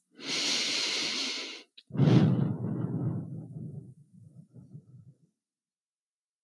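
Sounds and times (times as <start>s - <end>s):
slow deep breathing with long exhales in a guided self-soothing exercise: 0.2s - 5.3s.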